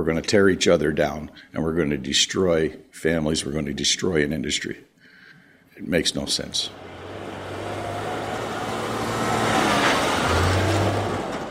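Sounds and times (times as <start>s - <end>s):
speech: 0.0s - 4.9s, 5.8s - 7.0s
massive heavy trucks rumbling past: 6.6s - 11.4s.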